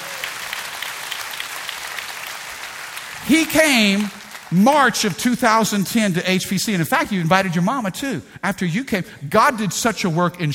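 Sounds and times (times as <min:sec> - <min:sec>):
church congregation applause: 0:00.0 - 0:05.7
speech: 0:03.3 - 0:10.5.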